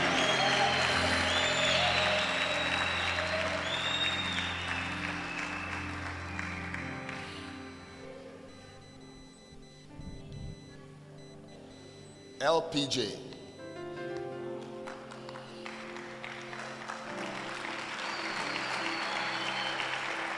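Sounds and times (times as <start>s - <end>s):
audience clapping hands: 0.0s - 8.0s, 14.1s - 20.3s
speech: 12.4s - 13.2s.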